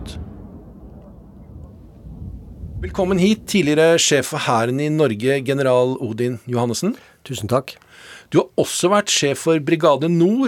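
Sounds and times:
deep continuous battlefield rumble at the front line in Bakhmut in winter: 0.0s - 4.8s
low battlefield booms at the front line in Bakhmut: 0.0s - 5.0s
speech: 2.8s - 10.4s.

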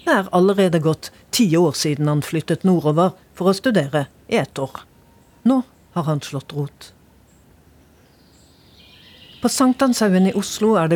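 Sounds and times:
birdsong in a city park: 0.0s - 0.3s, 5.0s - 10.9s
speech: 0.0s - 7.0s, 9.4s - 10.9s.

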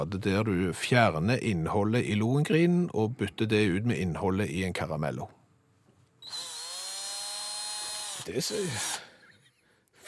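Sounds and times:
speech: 0.0s - 5.4s, 8.2s - 9.0s
power drill drilling into a chocolate bar: 6.2s - 9.0s.

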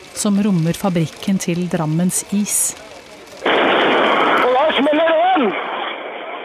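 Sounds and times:
sustained roaring rush of noise from the blast: 0.0s - 6.4s
speech: 0.2s - 3.0s, 4.8s - 5.6s
propane gas tank exploding during a building fire at an ice cream factory: 3.4s - 6.4s.

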